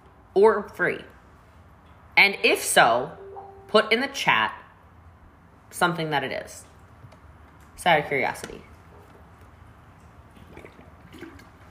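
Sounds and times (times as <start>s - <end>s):
speech: 0.4s - 1.2s, 2.2s - 4.6s, 5.7s - 6.7s, 7.8s - 8.7s
water sloshing and gurgling inside a bottle: 10.0s - 11.6s
soft wet gulping sounds: 10.2s - 11.6s.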